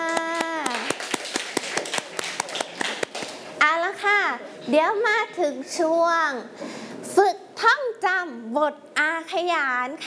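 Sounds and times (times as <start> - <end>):
children clapping their hands: 0.0 - 3.4
speech: 4.7 - 10.0.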